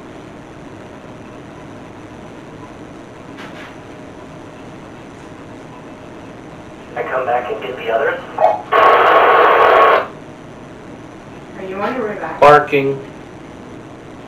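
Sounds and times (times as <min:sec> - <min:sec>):
loud harsh radio static: 0:06.8 - 0:10.2
people talking: 0:06.9 - 0:10.1, 0:11.6 - 0:13.1.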